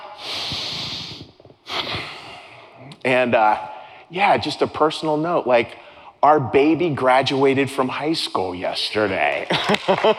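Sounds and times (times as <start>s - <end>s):
breaths: 0.0s - 2.9s, 3.6s - 4.1s, 5.7s - 6.2s
speech: 3.0s - 10.1s
laughter: 9.5s - 10.1s.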